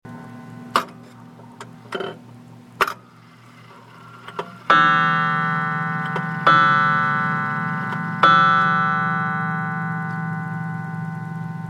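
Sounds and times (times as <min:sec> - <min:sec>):
coil gong: 0:04.7 - 0:11.6.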